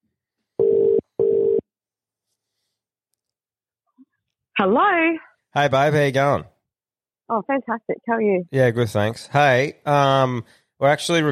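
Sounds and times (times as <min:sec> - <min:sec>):
electronic ringback tones of an outgoing phone call: 0:00.6 - 0:01.6
speech: 0:04.6 - 0:06.5, 0:07.3 - 0:11.2.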